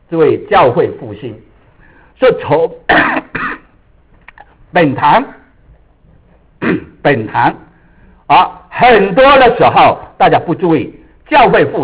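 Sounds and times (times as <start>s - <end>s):
speech: 0.1s - 1.5s, 2.2s - 3.3s, 4.7s - 5.4s, 6.6s - 7.7s, 8.3s - 11.8s
man clearing his throat: 2.9s - 3.8s, 6.6s - 7.0s
man coughing: 2.9s - 3.8s, 6.6s - 7.0s.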